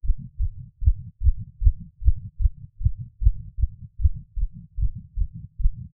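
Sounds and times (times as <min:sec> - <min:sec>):
human heartbeat: 0:00.0 - 0:05.9.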